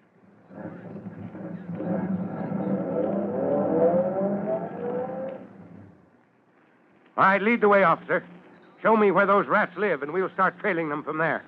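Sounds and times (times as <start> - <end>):
car engine accelerating and pulling up: 0.4 - 6.0
speech: 7.2 - 11.4.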